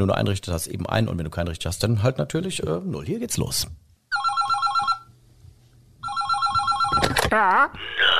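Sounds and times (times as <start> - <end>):
speech: 0.0 - 3.9, 7.3 - 8.0
telephone ringing with a warbling electronic trill: 4.1 - 5.1, 6.0 - 7.3.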